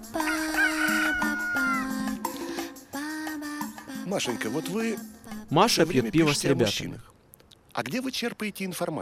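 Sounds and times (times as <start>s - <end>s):
rooster crowing and clucking during a ritual: 0.2s - 2.4s
speech: 4.1s - 7.1s, 7.8s - 9.0s.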